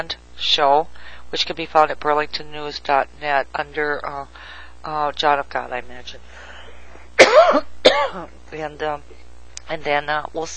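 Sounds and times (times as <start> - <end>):
speech: 0.0 - 6.5, 7.2 - 10.5
person coughing: 7.2 - 8.3.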